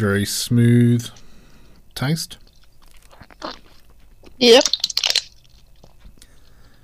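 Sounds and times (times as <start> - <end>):
speech: 0.0 - 1.2, 2.0 - 2.4, 4.4 - 4.8
crunchy bite into ice cream with cookie pieces: 2.4 - 6.0
faint chewing clicks: 2.4 - 6.6.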